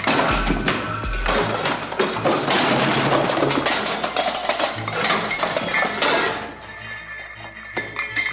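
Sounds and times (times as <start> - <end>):
ceramic plates crashing and shattering onto a hard floor: 0.0 - 6.6.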